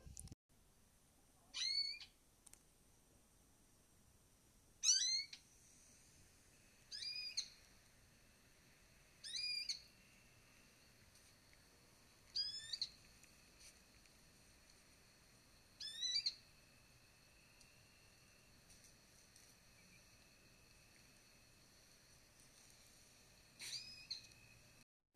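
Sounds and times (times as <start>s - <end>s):
faint hiss: 0.0s - 24.8s
eared quetzal singing: 1.6s - 2.1s, 4.8s - 5.4s, 6.9s - 7.6s, 9.2s - 9.9s, 12.3s - 13.0s, 15.8s - 16.4s, 23.6s - 24.4s.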